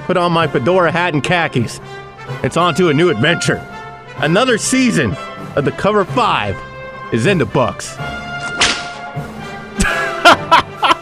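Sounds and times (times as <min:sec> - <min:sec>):
speech: 0:00.1 - 0:08.3
whip cracking: 0:08.4 - 0:09.1
laughter: 0:09.8 - 0:11.0.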